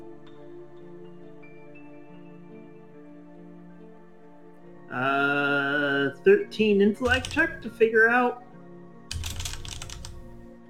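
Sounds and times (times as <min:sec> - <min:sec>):
speech: 0:04.9 - 0:05.3, 0:06.2 - 0:08.4
typing on a keyboard: 0:07.0 - 0:07.7, 0:09.1 - 0:10.4.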